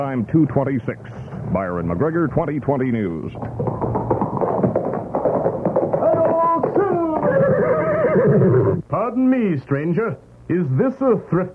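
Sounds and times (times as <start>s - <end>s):
speech: 0.0s - 4.1s, 8.3s - 11.5s
busy tapping and clattering: 3.4s - 7.3s
horse neighing: 5.9s - 8.8s.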